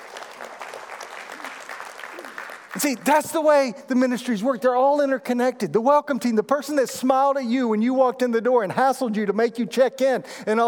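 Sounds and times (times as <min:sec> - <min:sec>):
church congregation applauding: 0:00.0 - 0:03.7
speech: 0:02.8 - 0:10.6.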